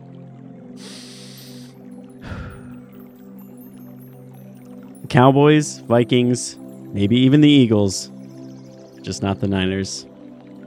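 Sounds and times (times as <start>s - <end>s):
deep breathing: 0.8s - 2.9s
speech: 5.1s - 8.2s, 9.0s - 10.1s.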